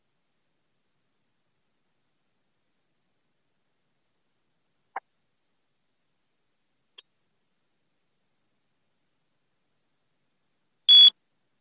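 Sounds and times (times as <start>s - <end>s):
timer electronic warning blips: 10.9s - 11.1s
timer sharp steady beep tone: 10.9s - 11.1s.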